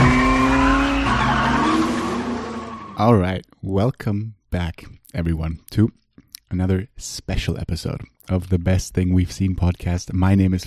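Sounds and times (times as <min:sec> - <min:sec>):
car engine whine while accelerating: 0:00.0 - 0:03.0
car tires squealing while accelerating away: 0:00.0 - 0:03.0
speech: 0:03.0 - 0:10.6.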